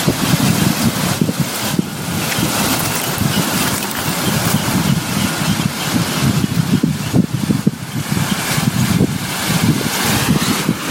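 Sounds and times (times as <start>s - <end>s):
wind at the shore: 0.0s - 10.9s
calm sea waves washing over a pebble shore: 1.6s - 5.0s.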